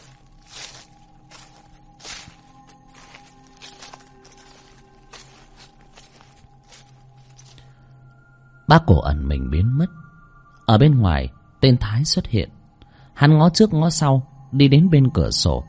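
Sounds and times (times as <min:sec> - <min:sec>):
footsteps rustling on rotting branches and dead leaves: 0:00.0 - 0:07.7
faint steady drone: 0:00.0 - 0:15.6
speech: 0:08.7 - 0:10.0, 0:10.7 - 0:12.6, 0:13.2 - 0:15.6.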